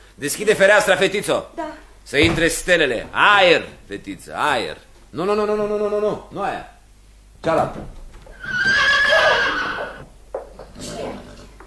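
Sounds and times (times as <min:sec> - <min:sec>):
speech: 0:00.2 - 0:06.7, 0:07.4 - 0:08.6
horse whinnying outside a window: 0:08.3 - 0:10.1.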